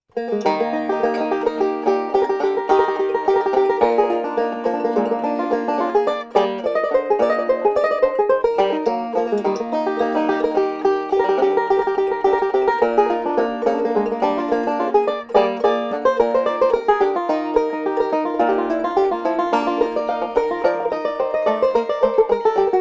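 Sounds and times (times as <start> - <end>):
jazz clarinet polka: 0.1 - 22.7.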